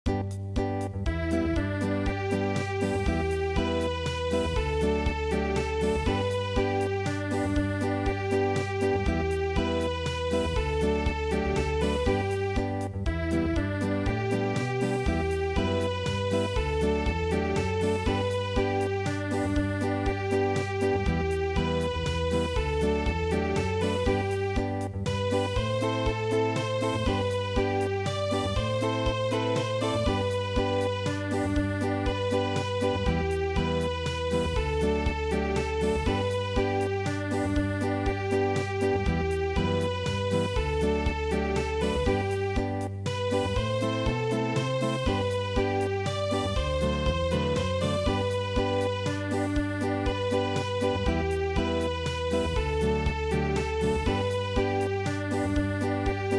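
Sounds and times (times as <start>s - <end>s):
acoustic German dance song: 0.1s - 56.3s.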